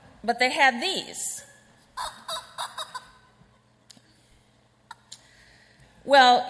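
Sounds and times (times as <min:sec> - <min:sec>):
speech: 0:00.2 - 0:02.1, 0:06.1 - 0:06.4
squeezed rubber chicken pet toy squawking: 0:02.0 - 0:03.3.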